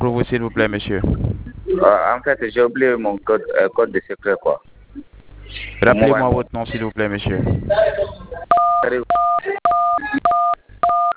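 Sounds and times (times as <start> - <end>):
speech: 0.0 - 10.2
speech: 0.2 - 4.7, 5.8 - 8.2, 8.8 - 11.1
telephone keypad button tones during a call to a customer service line: 8.5 - 11.1.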